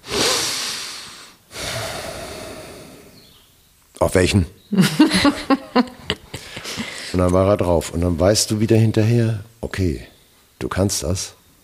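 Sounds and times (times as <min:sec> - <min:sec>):
voice imitating a man snorting deeply: 0:00.0 - 0:03.2
speech: 0:04.0 - 0:06.0, 0:07.2 - 0:11.4
laughter: 0:04.8 - 0:07.4.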